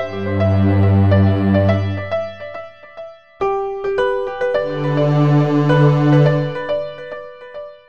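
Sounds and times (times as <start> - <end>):
orchestra playing: 0.1 - 2.3, 4.7 - 6.7.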